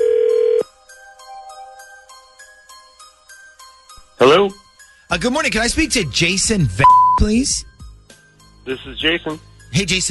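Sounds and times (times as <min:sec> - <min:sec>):
steady telephone dial tone: 0:00.0 - 0:00.6
speech: 0:04.2 - 0:04.6, 0:05.2 - 0:07.7, 0:08.7 - 0:10.0
touch-tone telephone dialing beeps: 0:06.8 - 0:07.2.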